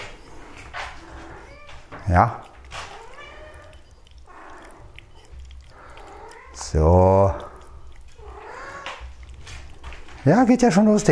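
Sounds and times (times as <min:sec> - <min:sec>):
domestic cat meowing: 0:01.0 - 0:09.6
speech: 0:02.1 - 0:02.5, 0:06.7 - 0:07.1, 0:10.2 - 0:11.1.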